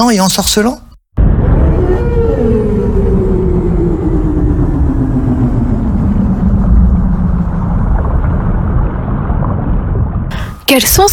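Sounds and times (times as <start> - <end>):
speech: 0.0 - 0.9, 10.7 - 11.1
steady deep rumble: 1.2 - 10.7
long low whale moan sliding downward in pitch: 1.3 - 8.6.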